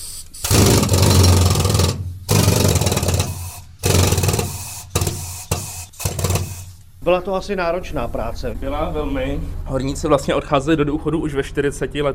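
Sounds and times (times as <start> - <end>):
pneumatic rock drill with hammer action boring blast holes in a mine tunnel: 0.0 - 6.8
speech: 7.1 - 12.1.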